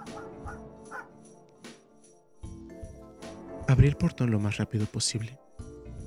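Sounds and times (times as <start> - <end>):
dog barking impatiently: 0.0 - 1.2
speech: 3.7 - 5.5.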